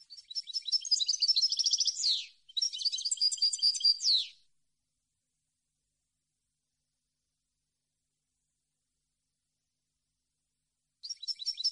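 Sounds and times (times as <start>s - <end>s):
European goldfinch singing: 0.0s - 4.4s, 11.0s - 11.7s.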